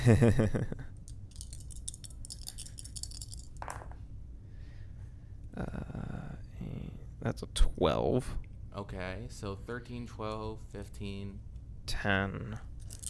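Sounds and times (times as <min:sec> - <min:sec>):
speech: 0:00.0 - 0:00.9, 0:07.2 - 0:12.7
dice rattling and clattering as they are rolled at a tabletop game: 0:01.0 - 0:04.0, 0:12.8 - 0:13.0.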